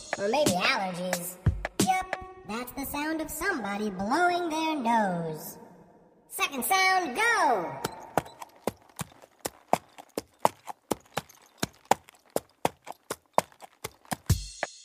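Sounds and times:
speech: 0:00.2 - 0:01.4, 0:02.5 - 0:05.6, 0:06.3 - 0:07.9
horse walking with hooves clip-clopping: 0:07.8 - 0:14.5.

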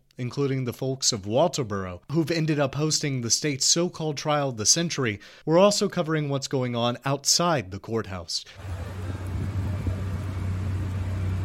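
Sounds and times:
speech: 0:00.2 - 0:09.2
low mechanical drone from food trucks at a roadside outside a courthouse: 0:08.6 - 0:11.4.

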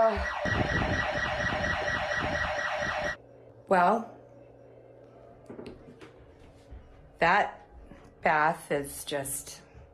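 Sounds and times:
house alarm going off: 0:00.0 - 0:03.2
speech: 0:00.1 - 0:00.8, 0:03.7 - 0:04.2, 0:07.2 - 0:07.6, 0:08.2 - 0:09.6.

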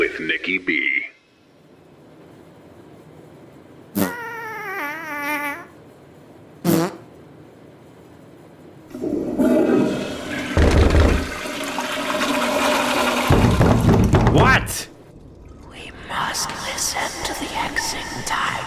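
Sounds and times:
speech: 0:00.2 - 0:01.1
toilet flushing in a bathroom: 0:08.9 - 0:18.6
high wavering vocal sounds: 0:15.5 - 0:18.6.

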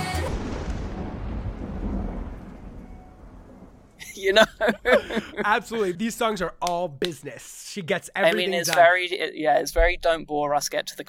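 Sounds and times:
sharp crack of thunder with deep rolling rumble: 0:00.0 - 0:05.8
laughter: 0:04.0 - 0:06.2, 0:07.9 - 0:09.3
speech: 0:04.2 - 0:11.0.

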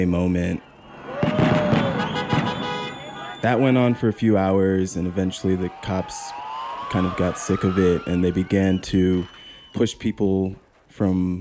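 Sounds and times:
speech: 0:00.0 - 0:00.7, 0:03.4 - 0:11.3
crowd noise of hundreds of people in the streets: 0:00.0 - 0:11.3
fireworks bangs at a World Series street celebration in Los Angeles: 0:00.4 - 0:11.3
faint horn-like tone: 0:02.0 - 0:03.6.

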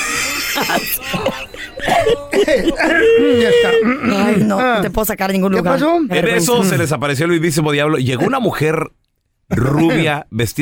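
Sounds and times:
laughter: 0:00.0 - 0:04.6
speech: 0:00.6 - 0:10.6
person coughing: 0:00.8 - 0:04.4
person clearing throat: 0:01.1 - 0:04.5.

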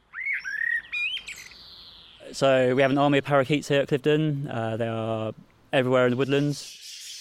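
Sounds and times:
blackbird singing fluting whistled phrases: 0:00.0 - 0:02.4, 0:06.1 - 0:07.1
speech: 0:02.3 - 0:06.8.

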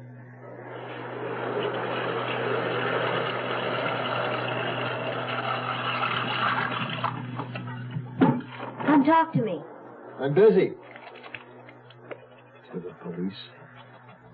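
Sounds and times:
low hum: 0:00.0 - 0:14.3
water rushing from a tap into a bathtub: 0:00.8 - 0:08.6
speech: 0:09.0 - 0:10.8, 0:13.2 - 0:13.6.

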